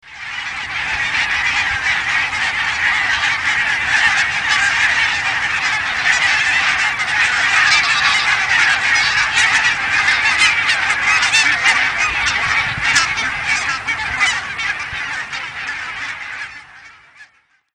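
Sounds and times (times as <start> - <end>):
geese: 0.0 - 17.7.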